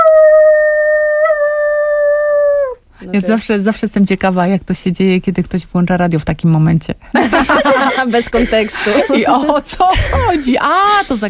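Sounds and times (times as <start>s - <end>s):
person imitating a wolf howl: 0.0s - 2.8s
speech: 3.1s - 11.2s
laughter: 7.1s - 11.2s.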